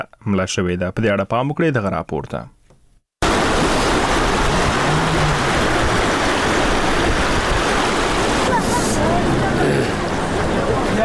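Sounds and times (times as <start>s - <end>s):
speech: 0.2s - 2.6s
rushing floodwater after heavy rains in Uruzgan province Afghanistan: 3.2s - 11.0s.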